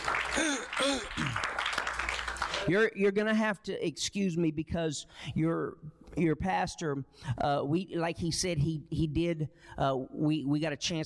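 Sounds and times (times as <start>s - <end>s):
audience clapping in a large room: 0.0s - 2.8s
speech: 2.7s - 11.0s.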